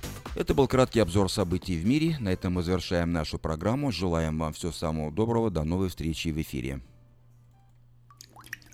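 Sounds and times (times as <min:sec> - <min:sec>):
speech: 0:00.4 - 0:06.9
faint steady low hum: 0:03.3 - 0:08.7
water drips plinking: 0:07.2 - 0:08.7.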